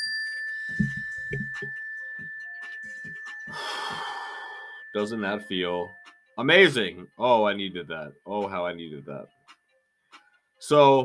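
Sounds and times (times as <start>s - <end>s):
mindfulness bell ringing: 0.0s - 7.0s
soft breaths and sighs: 3.5s - 4.9s
speech: 5.0s - 9.4s, 10.6s - 11.0s.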